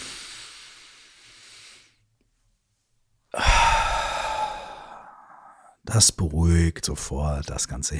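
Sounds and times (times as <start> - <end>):
deep breath drawn in through the nose: 0.0 - 2.0, 3.4 - 5.8
speech: 6.0 - 7.9.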